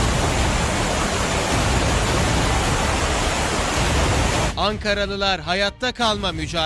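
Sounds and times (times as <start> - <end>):
floodwater after heavy downpour rushing down a street in Ankara Turkey: 0.0 - 4.6
speech: 4.7 - 6.6.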